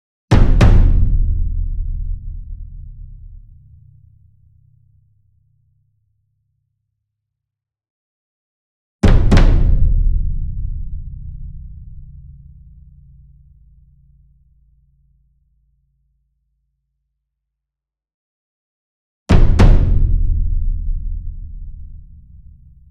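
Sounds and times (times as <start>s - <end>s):
ensemble concert bass drum, double: 0.3s - 3.4s, 9.0s - 12.5s, 19.3s - 22.8s.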